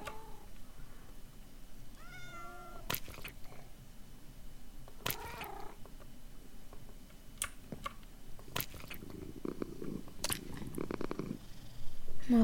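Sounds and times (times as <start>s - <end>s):
cats purring: 0.0s - 3.9s, 5.0s - 6.1s, 6.7s - 12.4s
cat meowing: 1.9s - 2.9s, 5.1s - 5.8s
sharp clicks: 2.9s - 3.5s, 4.9s - 6.1s, 6.8s - 9.2s.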